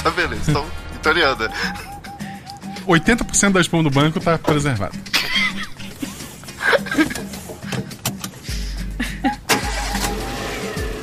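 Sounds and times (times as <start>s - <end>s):
speech: 0.0s - 1.9s, 2.9s - 5.1s
people laughing: 1.3s - 3.2s, 5.0s - 8.0s, 8.9s - 9.5s
clattering bumps: 3.0s - 8.4s
car engine cranking and catching: 6.9s - 11.0s
car pulling away with a loud low rumble: 9.5s - 11.0s.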